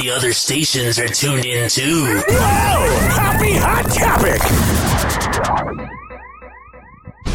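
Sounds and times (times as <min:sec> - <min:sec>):
speech: 0:00.2 - 0:06.1
warbling electronic chirps: 0:02.2 - 0:07.3.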